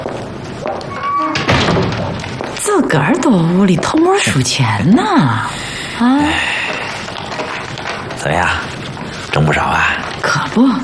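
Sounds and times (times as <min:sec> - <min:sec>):
room noise: 0:00.0 - 0:10.8
door thudding shut: 0:01.0 - 0:02.2
speech: 0:02.8 - 0:06.7, 0:08.2 - 0:08.8, 0:09.4 - 0:10.0, 0:10.6 - 0:10.8.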